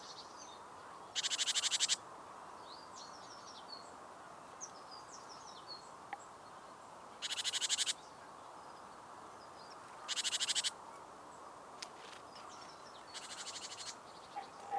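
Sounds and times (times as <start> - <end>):
Parus major scolding rattles: 1.2 - 2.0, 7.2 - 8.0, 10.0 - 10.7, 12.0 - 14.7.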